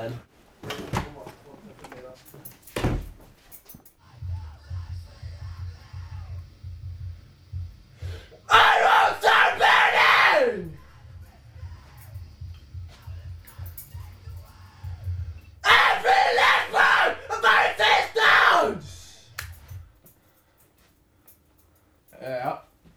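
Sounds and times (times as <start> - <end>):
speech: 0.0 - 0.8
group of people shouting and screaming together: 8.5 - 10.9, 15.6 - 19.3.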